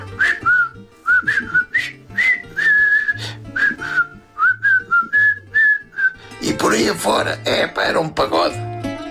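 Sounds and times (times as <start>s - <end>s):
person whistling a jaunty film march tune: 0.0s - 6.4s
speech: 6.8s - 8.7s.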